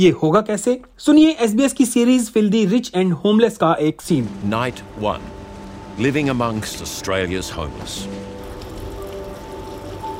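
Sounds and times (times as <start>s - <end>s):
speech: 0.0s - 5.4s, 6.0s - 8.3s
heavy rain pouring on hard surfaces: 4.0s - 10.1s.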